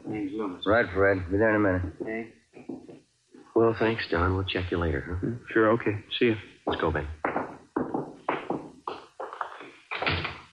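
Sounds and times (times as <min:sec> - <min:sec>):
speech: 0:00.3 - 0:02.4, 0:03.6 - 0:07.2
hollow wooden thumps and knocks: 0:06.7 - 0:10.5
door slamming: 0:09.9 - 0:10.5.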